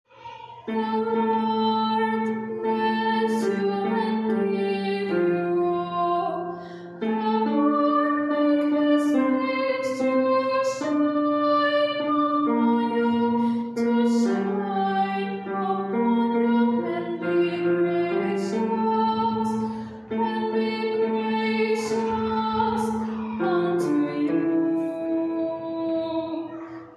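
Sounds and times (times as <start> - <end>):
tenor singing: 0.1 - 26.8.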